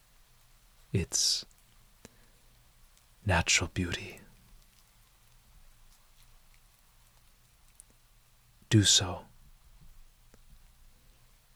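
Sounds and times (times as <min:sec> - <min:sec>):
soft steady rain pattering: 0:00.0 - 0:09.2
speech: 0:00.9 - 0:01.5, 0:03.3 - 0:04.2, 0:08.7 - 0:09.3.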